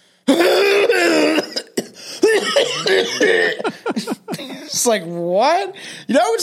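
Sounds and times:
person imitating the loud cough of an animal: 0.4 - 3.7
laughter: 2.3 - 4.7
speech: 4.8 - 6.4.

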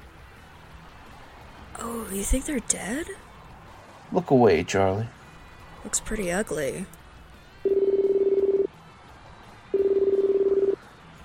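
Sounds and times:
speech: 2.1 - 3.3, 4.1 - 5.2, 5.8 - 7.0
phone ringing with buzzy warbling rings: 7.6 - 8.7, 9.7 - 10.8.

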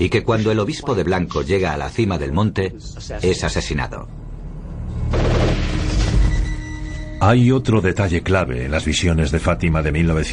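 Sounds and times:
speech: 0.0 - 4.3, 7.2 - 10.3
burst of gunfire with booming undertone: 5.1 - 6.1.

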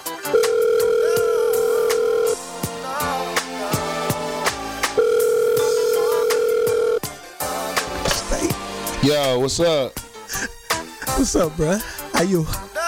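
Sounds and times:
backing music beat: 0.0 - 12.8
telephone ringing for an incoming call with a steady electronic tone: 0.2 - 2.4, 5.0 - 7.1
speech: 9.1 - 10.5, 11.2 - 12.7.

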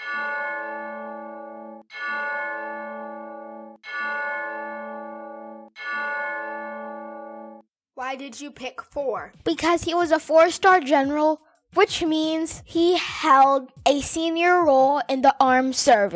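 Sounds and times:
bell struck in memory of a deceased four-star general: 0.0 - 7.6
speech: 8.1 - 16.1.

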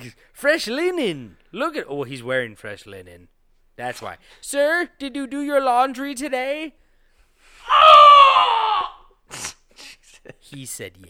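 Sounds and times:
speech: 0.0 - 6.8, 10.2 - 11.0
breathy gasps: 6.9 - 7.9
person screaming: 7.7 - 9.0.

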